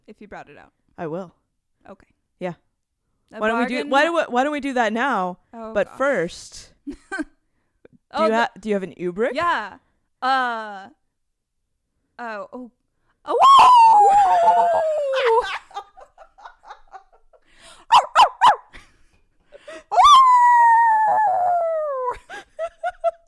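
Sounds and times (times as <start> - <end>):
speech: 0.1 - 2.7, 3.3 - 7.3, 8.1 - 11.0, 12.2 - 15.6
woman imitating wolf howls: 13.4 - 15.4, 20.0 - 22.2
short yelps and breaths: 17.6 - 18.7.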